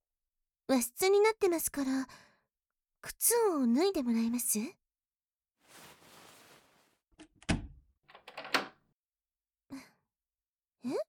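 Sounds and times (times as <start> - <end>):
speech: 0.7 - 2.2, 3.0 - 4.8, 10.8 - 11.0
door lock rattling clicks as it is locked: 7.2 - 8.8
sliding door shutting with a solid thunk: 7.4 - 8.7.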